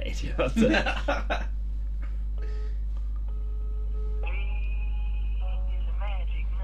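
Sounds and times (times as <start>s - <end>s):
low steady hum: 0.0s - 6.6s
speech: 0.2s - 1.5s
laughter: 0.5s - 1.5s
phone call ringing tone: 2.4s - 5.8s.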